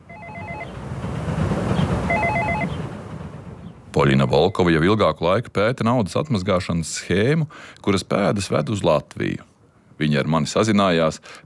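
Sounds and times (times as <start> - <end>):
apartment building intercom ringing in Riga's Pļavnieki district: 0.0 - 0.8, 2.0 - 2.8
steady hiss and rumble: 0.0 - 11.4
speech: 4.0 - 11.4.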